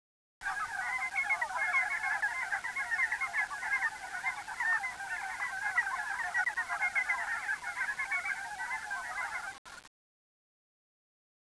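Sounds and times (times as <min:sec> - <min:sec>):
frogs croaking and trilling in chorus: 0:00.5 - 0:09.5.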